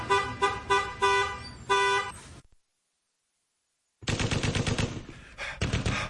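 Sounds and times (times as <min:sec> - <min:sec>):
loud honking blasts: 0:00.0 - 0:02.3
rapid gunfire of a war outside a foxhole: 0:04.0 - 0:06.0.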